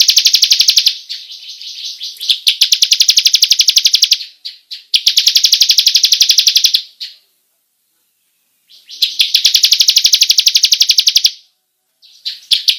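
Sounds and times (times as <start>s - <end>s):
bar-winged prinia singing a fast buzzy rolling trill: 0.0s - 4.2s, 5.0s - 6.8s, 8.7s - 11.3s.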